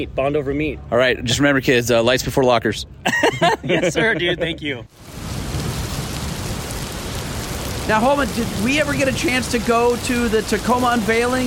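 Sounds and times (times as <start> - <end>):
speech: 0.0 - 5.1, 7.9 - 11.4
laughter: 3.0 - 4.8
steady dense rain downpour: 4.9 - 11.4
deep low rumble of rolling thunder: 5.0 - 11.4.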